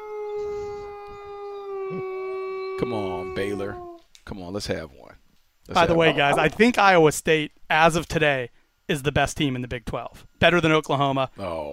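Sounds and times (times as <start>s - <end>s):
wolf howling: 0.0s - 4.1s
speech: 2.8s - 11.7s.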